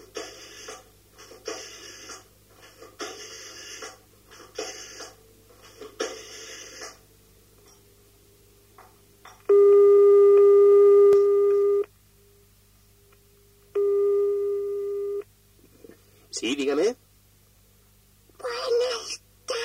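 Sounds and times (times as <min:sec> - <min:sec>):
faint low noise: 0:00.0 - 0:19.6
telephone line tone before a phone call: 0:09.5 - 0:11.9, 0:13.8 - 0:15.2.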